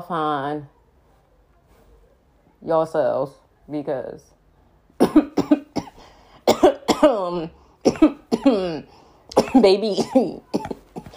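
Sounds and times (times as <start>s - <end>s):
speech: 0.0s - 0.8s, 2.6s - 4.4s, 7.0s - 11.1s
person coughing harshly with throaty, voiced hacks: 5.0s - 11.1s.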